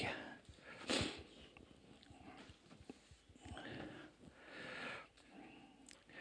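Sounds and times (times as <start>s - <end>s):
soft rustling background: 0.2s - 5.4s
wet nasal sniffles: 0.6s - 1.5s.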